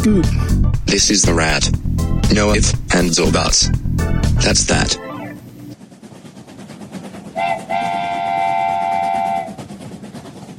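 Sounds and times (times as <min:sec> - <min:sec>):
speech: 0:00.0 - 0:03.8, 0:04.4 - 0:05.0
train rumbling on rails: 0:00.0 - 0:10.5
train horn: 0:07.4 - 0:09.7.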